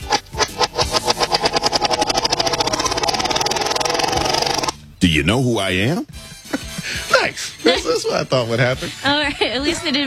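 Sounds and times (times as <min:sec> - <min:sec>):
prize wheel spun backwards ratcheting clicks: 0:00.0 - 0:04.8
speech: 0:05.0 - 0:10.0.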